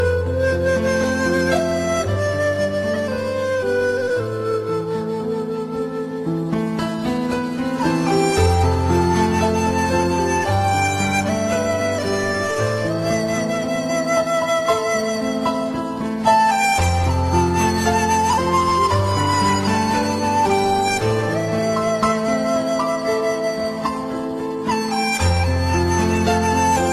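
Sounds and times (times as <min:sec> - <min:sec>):
Chinese flute: 0:00.0 - 0:26.9
piano: 0:00.0 - 0:26.9.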